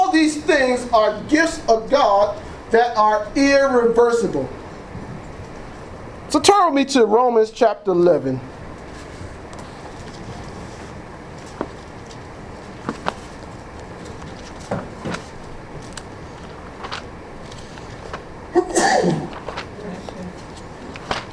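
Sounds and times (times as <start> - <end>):
hiss: 0.0 - 21.3
speech: 0.2 - 4.6, 6.3 - 8.5
sneeze: 18.6 - 19.4.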